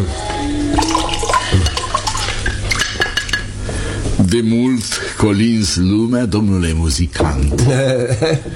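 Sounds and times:
water running and splashing: 0:00.8 - 0:03.5
light clinks of dishes or utensils: 0:00.8 - 0:03.6
speech: 0:04.3 - 0:08.5.

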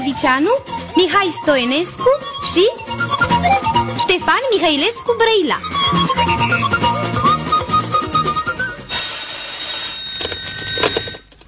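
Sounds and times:
speech: 0:00.1 - 0:06.6
bright melodic tones: 0:00.9 - 0:11.0
electronic telephone ringing: 0:08.9 - 0:11.4.

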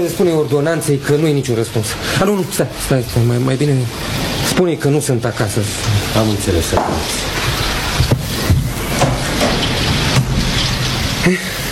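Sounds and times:
speech: 0:00.0 - 0:07.6, 0:11.2 - 0:11.4
steady dense rain falling: 0:00.0 - 0:11.7.

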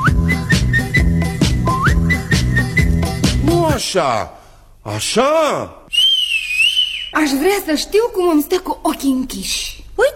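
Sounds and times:
person whistling a thin steady tone with upward slides: 0:00.0 - 0:03.4, 0:05.9 - 0:07.2
loud rhythmic music with regular punchy beats: 0:00.0 - 0:03.8
speech: 0:03.8 - 0:05.8, 0:07.2 - 0:10.1.

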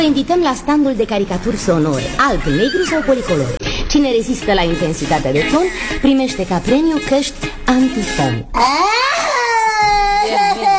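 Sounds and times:
speech: 0:00.0 - 0:09.1
child crying with a distressed wail: 0:02.5 - 0:03.6, 0:08.6 - 0:10.7.

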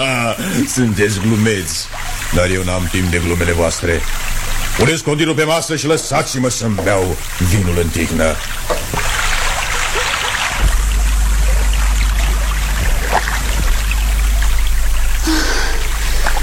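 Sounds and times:
speech: 0:00.0 - 0:08.9
constant low rumble: 0:08.3 - 0:16.4
oars splashing in water while rowing a fishing boat at nightfall: 0:08.4 - 0:16.4.

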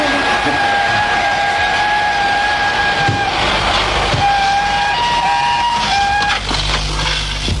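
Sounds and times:
locomotive shrill whistle blasts: 0:00.0 - 0:06.6
train wheels rolling in a gorge through rocky mountains: 0:00.0 - 0:07.5
train brakes grinding as the train comes to a stop: 0:01.0 - 0:07.5.

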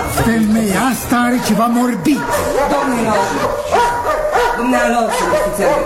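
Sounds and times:
speech: 0:00.1 - 0:03.9, 0:04.6 - 0:05.8
dog barking: 0:00.9 - 0:05.8.

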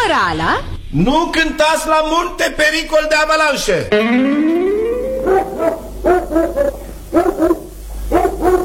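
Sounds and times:
speech: 0:00.1 - 0:04.7, 0:06.3 - 0:07.6
dog howling: 0:05.0 - 0:08.6.

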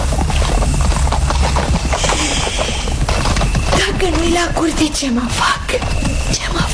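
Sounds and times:
dense continuous rumble of noise: 0:00.0 - 0:06.7
horse hooves clip-clopping: 0:00.0 - 0:06.7
speech: 0:04.0 - 0:06.7.

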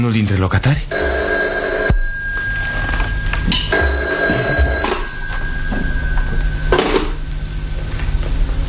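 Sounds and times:
speech: 0:00.0 - 0:01.1, 0:03.4 - 0:03.7
steady hum: 0:00.0 - 0:08.6
telephone ringing with a loud electronic trill: 0:00.9 - 0:07.3.

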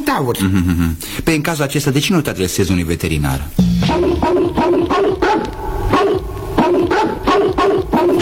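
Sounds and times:
speech: 0:00.1 - 0:04.8
dog barking: 0:03.9 - 0:08.2.

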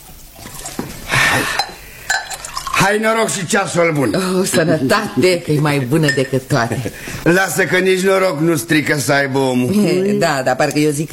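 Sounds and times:
plum brandy being poured into a cup: 0:00.0 - 0:04.3
speech: 0:01.3 - 0:01.6, 0:02.9 - 0:11.1.

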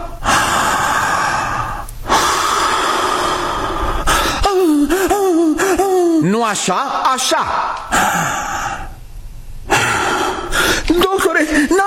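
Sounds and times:
person breathing heavily and loudly: 0:00.0 - 0:06.1, 0:07.5 - 0:09.0, 0:09.6 - 0:10.9
speech: 0:06.4 - 0:08.5.

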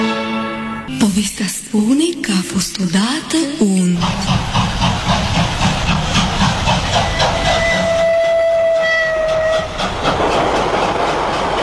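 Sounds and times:
train rumbling along: 0:00.8 - 0:11.6
speech: 0:01.1 - 0:04.8
rhythmic clatter of a train: 0:03.6 - 0:08.1, 0:09.3 - 0:11.6.

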